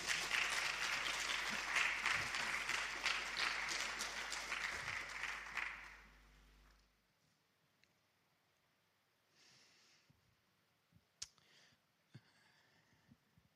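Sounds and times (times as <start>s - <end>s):
crowd applauding: 0.0s - 6.5s.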